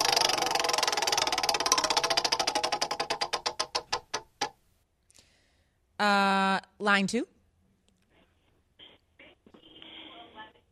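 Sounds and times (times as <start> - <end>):
roulette wheel spinning and ticking for a caller game: 0.0 - 4.6
speech: 6.0 - 7.3.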